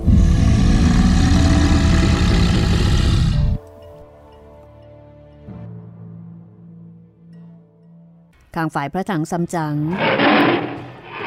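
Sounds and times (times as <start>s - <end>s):
tiger roaring: 0.0s - 3.6s, 9.9s - 11.2s
speech: 8.6s - 10.8s.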